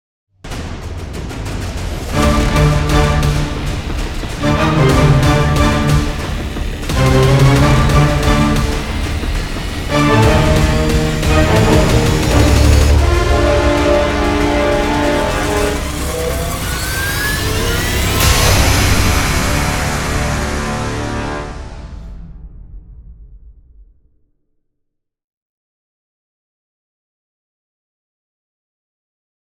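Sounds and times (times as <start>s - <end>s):
fast tense music: 0.4s - 23.0s.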